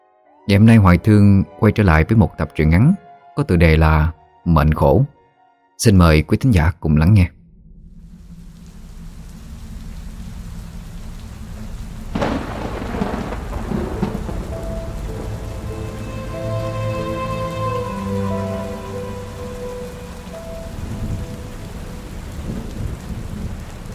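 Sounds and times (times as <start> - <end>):
speech: 0.4 - 5.2, 5.8 - 7.4
sustained humming tones: 7.3 - 23.8
thunder cracking sharply and rolling into a low rumble: 7.4 - 23.9
heavy rain pouring at night over a busy crowded street: 7.8 - 23.9.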